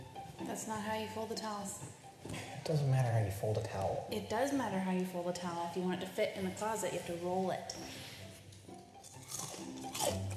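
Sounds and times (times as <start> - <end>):
speech: 0.4 - 8.0
loud chewing and crunching: 9.0 - 10.3.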